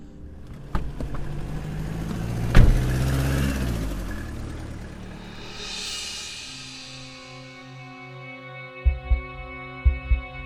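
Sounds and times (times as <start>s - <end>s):
car engine rumbling as the vehicle pulls away: 0.4s - 6.8s.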